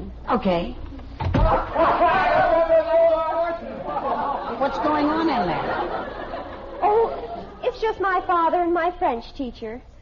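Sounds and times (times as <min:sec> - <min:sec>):
speech: 0:00.3 - 0:00.8, 0:01.4 - 0:02.1, 0:04.7 - 0:06.2, 0:07.8 - 0:09.9
door shutting with a heavy thud: 0:01.2 - 0:01.6
laughter: 0:01.5 - 0:08.4.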